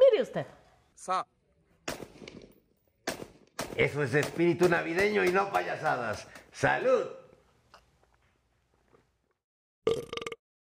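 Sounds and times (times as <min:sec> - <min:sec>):
speech: 0:00.2 - 0:02.0, 0:03.8 - 0:07.2
gunshots fired at nativity scene figures in target practice: 0:01.8 - 0:06.5.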